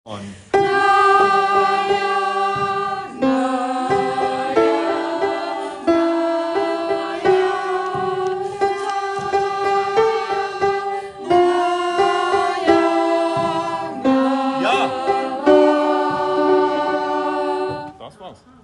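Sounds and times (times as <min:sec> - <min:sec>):
gospel choir singing alto parts: 0:00.5 - 0:18.1.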